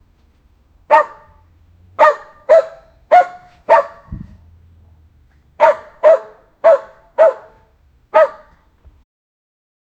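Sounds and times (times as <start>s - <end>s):
dog barking: 0.9s - 1.4s, 2.0s - 4.2s, 5.6s - 8.6s
low thud: 3.6s - 4.6s.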